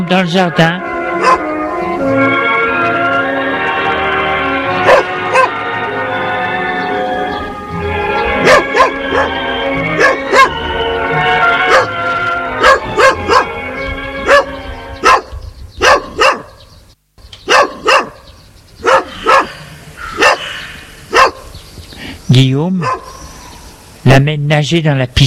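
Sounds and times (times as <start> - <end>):
steady tonal background: 0.0 - 15.5, 18.7 - 21.6
speech: 0.1 - 1.4, 22.4 - 23.1, 24.1 - 25.2
dog barking in sharp loud yaps: 1.2 - 1.5, 4.8 - 5.6, 8.4 - 9.4, 10.0 - 10.6, 11.7 - 12.0, 12.6 - 13.5, 14.2 - 16.6, 17.5 - 20.5, 21.1 - 21.5, 22.8 - 23.2.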